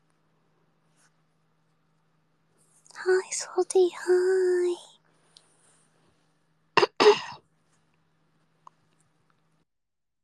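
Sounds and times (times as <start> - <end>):
speech: 3.0 - 4.9
person coughing: 6.8 - 7.4.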